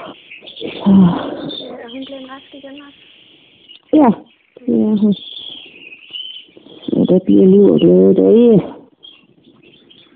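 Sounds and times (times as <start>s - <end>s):
birds chirping: 0.0s - 10.1s
speech: 0.9s - 1.3s, 4.0s - 4.2s, 4.9s - 5.3s, 7.1s - 8.7s.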